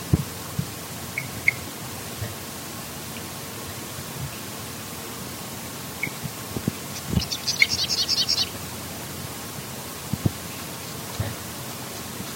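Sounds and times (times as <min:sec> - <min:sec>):
background hiss: 0:00.0 - 0:12.3
sedge wren song: 0:01.0 - 0:01.7, 0:06.0 - 0:06.2, 0:06.9 - 0:08.7.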